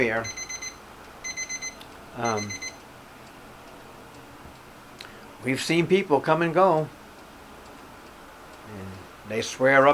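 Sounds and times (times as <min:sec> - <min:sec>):
speech: 0:00.0 - 0:00.4, 0:02.2 - 0:02.7, 0:05.4 - 0:07.0, 0:08.7 - 0:09.9
weather alarm shrill electronic beeps: 0:00.2 - 0:02.8.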